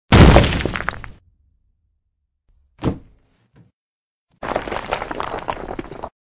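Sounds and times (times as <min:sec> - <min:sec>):
boulder dropping: 0:00.1 - 0:01.2, 0:04.4 - 0:06.1.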